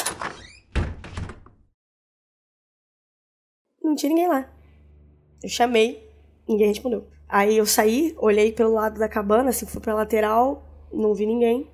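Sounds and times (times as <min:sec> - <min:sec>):
door creaking open: 0:00.0 - 0:01.6
speech: 0:03.9 - 0:04.6, 0:05.4 - 0:11.7.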